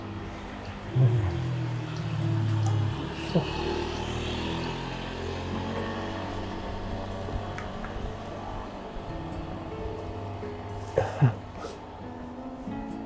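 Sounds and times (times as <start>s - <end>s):
outdoor noise: 0.0s - 13.0s
three-wheeled delivery motorbike passing: 0.0s - 13.0s
person murmuring: 0.9s - 2.0s, 3.2s - 3.9s
speech: 3.3s - 3.7s.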